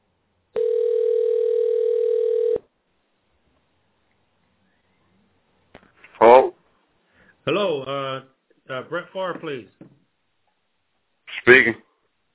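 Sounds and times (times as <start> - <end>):
ringback tone of an outgoing phone call: 0.6 - 2.6
speech: 7.4 - 9.8, 11.5 - 11.8.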